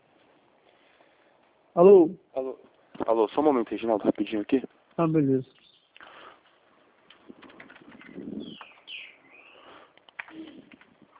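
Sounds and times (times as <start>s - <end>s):
speech: 1.8s - 5.6s
small bird singing in chirps and sweeping whistles: 5.3s - 6.0s, 7.8s - 10.7s.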